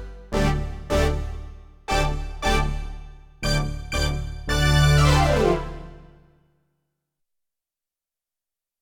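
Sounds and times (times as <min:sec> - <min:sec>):
Roland D-70 synth pad: 0:00.4 - 0:06.2.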